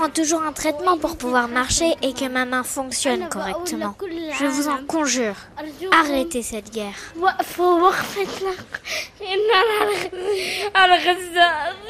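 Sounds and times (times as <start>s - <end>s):
speech: 0.0s - 11.8s
young girl bursting into sobs: 8.5s - 11.8s.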